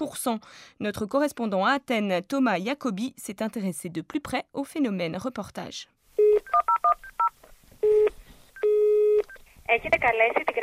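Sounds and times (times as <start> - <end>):
speech: 0.0 - 6.0, 9.7 - 10.6
telephone keypad beeps: 6.2 - 9.4.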